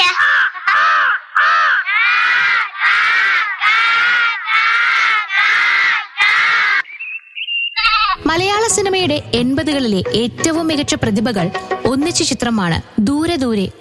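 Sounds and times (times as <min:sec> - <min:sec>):
crow cawing: 0:00.1 - 0:06.9, 0:07.8 - 0:08.2
speech: 0:08.3 - 0:13.8.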